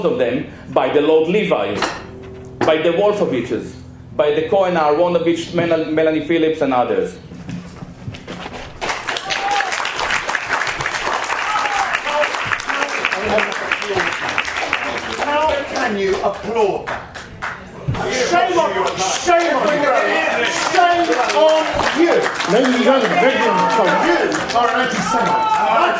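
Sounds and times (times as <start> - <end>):
speech: 0.0 - 2.0, 2.6 - 7.4, 21.4 - 25.9
large audience applause: 8.8 - 25.9
raised voices shouting over the clapping: 9.2 - 9.9, 11.3 - 12.5, 18.0 - 25.9.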